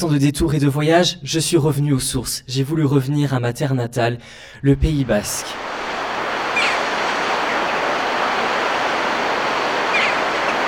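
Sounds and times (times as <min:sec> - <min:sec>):
speech: 0:00.0 - 0:05.8
waves breaking against cliffs in the Basque Country: 0:05.2 - 0:10.6.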